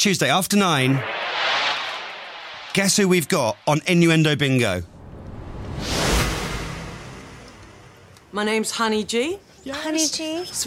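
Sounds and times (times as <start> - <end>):
speech: 0.0 - 1.7, 2.8 - 4.9, 8.4 - 10.6
airy whoosh: 0.6 - 8.4.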